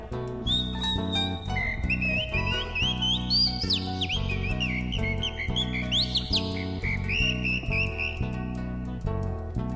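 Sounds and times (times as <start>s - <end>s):
instrumental music: 0.0s - 9.7s
whistling song imitating a mockingbird: 0.4s - 8.6s.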